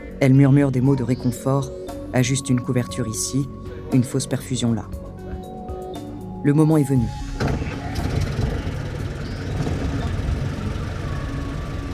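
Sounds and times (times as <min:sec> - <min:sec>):
speech: 0:00.2 - 0:05.0, 0:06.4 - 0:07.6
engine of a parked ambulance idling with a low rumble: 0:07.2 - 0:11.9.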